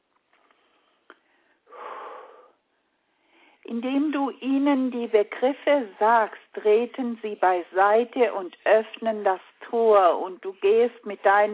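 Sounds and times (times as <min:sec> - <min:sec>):
heavy panting breaths during an exercise: 0:00.5 - 0:03.6
speech: 0:03.7 - 0:11.5.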